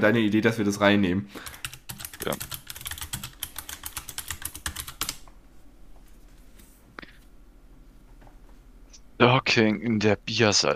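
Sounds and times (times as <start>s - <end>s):
speech: 0.0s - 2.6s, 9.2s - 10.7s
typing on a computer keyboard: 1.4s - 5.3s.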